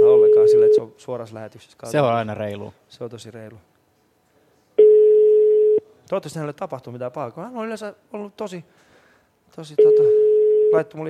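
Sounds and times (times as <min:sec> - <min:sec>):
ringback tone from an outgoing phone call in a studio: 0:00.0 - 0:00.8, 0:04.8 - 0:05.8, 0:09.8 - 0:10.8
speech: 0:01.0 - 0:03.7, 0:06.1 - 0:08.8, 0:09.5 - 0:11.0.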